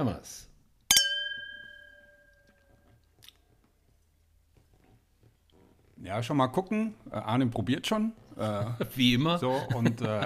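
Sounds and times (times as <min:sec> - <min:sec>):
speech: 0:00.0 - 0:00.5, 0:06.0 - 0:10.2
wine glasses clinking in a toast: 0:00.9 - 0:02.8
laughter: 0:08.4 - 0:10.2.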